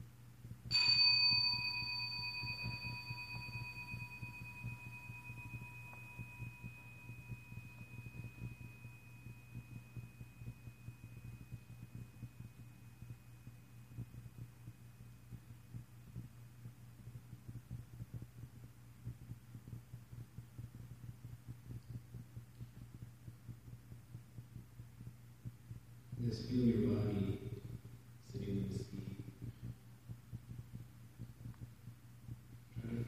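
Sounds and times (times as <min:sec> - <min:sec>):
low steady hum with soft throbbing: 0:00.0 - 0:33.0
meditation bell ringing: 0:00.7 - 0:09.6
speech: 0:26.3 - 0:27.3.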